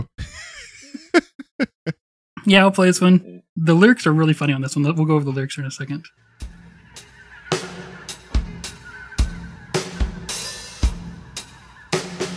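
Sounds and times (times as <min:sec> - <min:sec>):
laughter: 0:00.0 - 0:02.0, 0:06.8 - 0:11.8
speech: 0:02.4 - 0:06.4
exotica music track: 0:06.2 - 0:12.3
harsh honking bird squawks in an exotica music track: 0:06.2 - 0:12.3.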